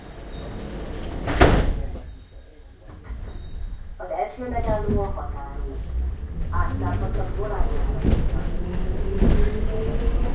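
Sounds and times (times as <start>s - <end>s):
train doors sliding shut: 0.0s - 10.3s
faint murmur: 1.0s - 9.6s
low steady rumble: 3.4s - 9.4s
speech: 4.4s - 5.9s, 6.7s - 8.5s.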